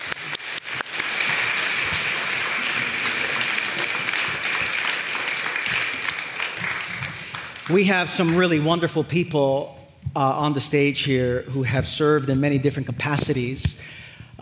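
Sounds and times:
room full of people applauding: 0:00.0 - 0:08.6
speech: 0:07.7 - 0:14.4.

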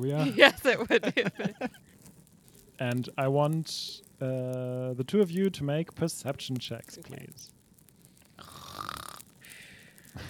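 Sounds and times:
speech: 0:00.0 - 0:01.5, 0:02.8 - 0:07.6
laughter: 0:00.0 - 0:01.8
breathy exhale: 0:08.2 - 0:10.2
person imitating snoring: 0:08.4 - 0:09.2.

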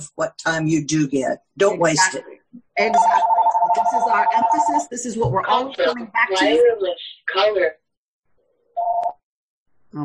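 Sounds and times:
speech: 0:00.0 - 0:07.8
phone ringing with short electronic tones: 0:02.8 - 0:04.9, 0:08.8 - 0:09.2.

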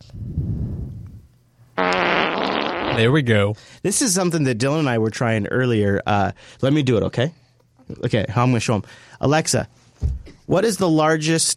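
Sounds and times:
fart sound effect played by a smart speaker: 0:01.8 - 0:03.0
speech: 0:03.0 - 0:11.5.

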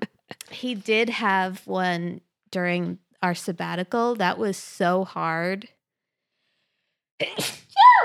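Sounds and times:
speech: 0:00.6 - 0:05.8, 0:07.2 - 0:08.0
single loud sneeze: 0:07.2 - 0:08.0.

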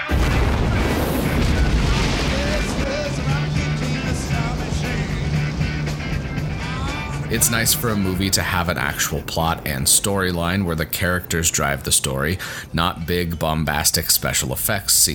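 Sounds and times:
rocket lifting off after a countdown: 0:00.1 - 0:07.4
speech: 0:07.3 - 0:15.1.

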